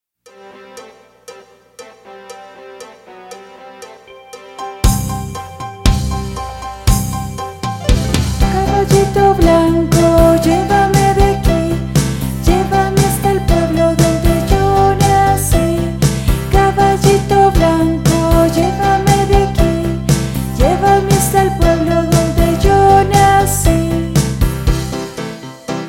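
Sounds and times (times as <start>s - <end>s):
guitar: 2.0s - 25.8s.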